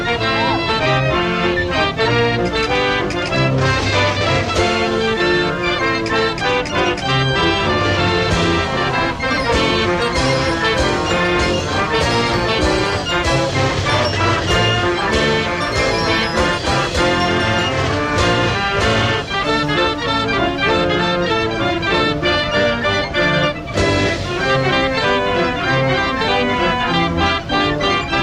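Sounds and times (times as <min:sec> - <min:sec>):
fairground crowd noise: 0:00.0 - 0:28.2
loud busy fairground music with thumping low beat: 0:00.0 - 0:28.2.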